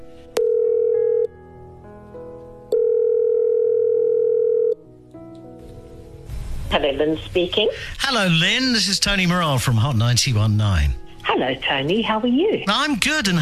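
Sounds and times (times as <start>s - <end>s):
faint music: 0.0s - 13.4s
electronic telephone tone as a call is placed: 0.4s - 1.3s, 2.7s - 4.8s
speech: 6.8s - 13.4s.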